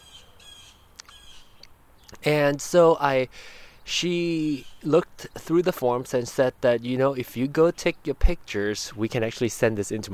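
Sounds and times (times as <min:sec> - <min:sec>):
harsh screechy bird call in rasping bursts: 0:00.0 - 0:01.6
quiet bird chirp: 0:00.0 - 0:02.5, 0:03.7 - 0:06.2
speech: 0:02.2 - 0:10.1.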